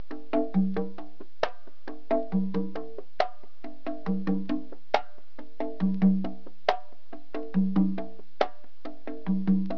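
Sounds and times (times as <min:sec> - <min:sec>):
music: 0:00.0 - 0:09.7.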